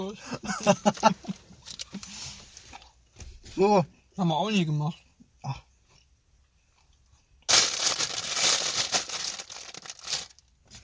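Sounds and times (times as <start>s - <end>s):
speech: 0.0s - 1.4s, 3.6s - 5.6s
laughter: 0.3s - 1.4s
hand rustling inside a plastic bag: 7.5s - 10.8s.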